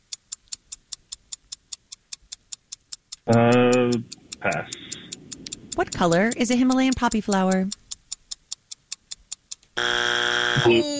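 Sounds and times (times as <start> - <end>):
quiz game countdown ticks: 0.0 - 10.8
speech: 3.3 - 4.8, 5.8 - 7.8, 10.6 - 10.9
harsh game-show time-up buzzer: 9.8 - 10.8.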